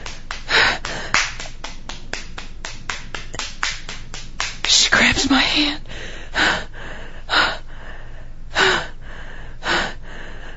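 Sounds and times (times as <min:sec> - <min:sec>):
hand slapping skin: 0:00.0 - 0:05.4
breathy gasp: 0:05.8 - 0:10.5.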